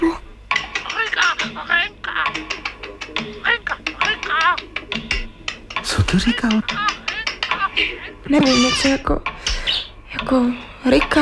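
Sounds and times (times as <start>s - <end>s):
parrot squawking and chattering: 0.7s - 5.3s, 6.0s - 10.0s
speech: 6.1s - 6.9s, 7.8s - 9.4s, 10.3s - 11.2s.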